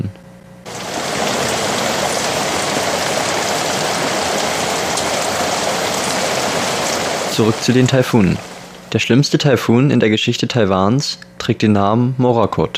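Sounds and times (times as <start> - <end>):
heavy rain pouring: 0.7 - 8.9
speech: 7.4 - 12.7.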